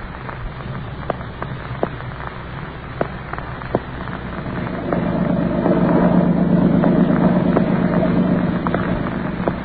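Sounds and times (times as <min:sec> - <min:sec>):
water rushing under a boat skimming over a lake: 0:00.8 - 0:09.6
motorboat engine droning on a lake: 0:03.8 - 0:09.6.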